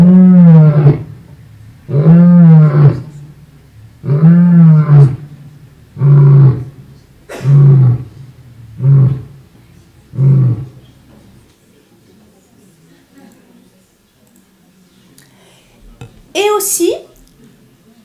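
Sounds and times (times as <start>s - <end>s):
lion roaring: 0.0s - 3.4s, 4.0s - 10.9s.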